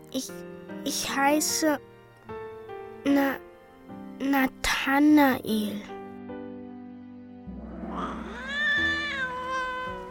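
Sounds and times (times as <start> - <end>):
speech: 0.1 - 1.9, 3.0 - 3.5, 4.2 - 5.9
cat meowing: 7.8 - 10.0.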